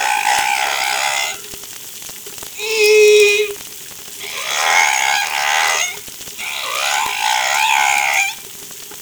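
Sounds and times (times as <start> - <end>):
whale song of harmonic wavering moans and cries: 0.0 - 1.6, 2.6 - 3.6, 4.2 - 8.5.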